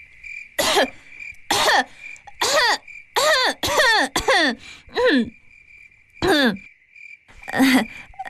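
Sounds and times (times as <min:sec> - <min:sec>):
young woman coughing with phlegm in her itchy throat: 0:00.6 - 0:05.3, 0:06.2 - 0:06.7.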